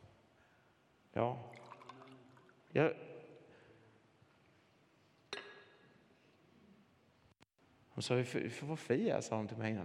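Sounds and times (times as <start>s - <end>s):
speech: 1.2s - 1.6s, 2.7s - 3.1s, 8.0s - 9.8s
water poured into a glass: 1.5s - 2.7s
single bright glass clink: 5.3s - 5.9s.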